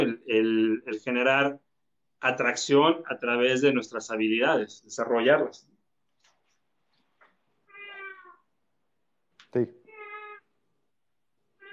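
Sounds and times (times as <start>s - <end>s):
speech: 0.1s - 5.7s, 9.5s - 9.8s
cat meowing: 7.6s - 8.5s, 9.8s - 10.5s, 11.5s - 11.7s.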